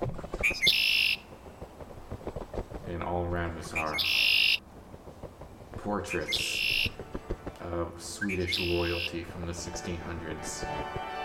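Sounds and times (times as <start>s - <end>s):
blackbird squawking: 0.4s - 1.3s, 3.6s - 4.6s, 6.1s - 7.0s, 8.2s - 9.2s
speech: 3.2s - 4.2s, 5.8s - 6.6s, 7.7s - 11.1s.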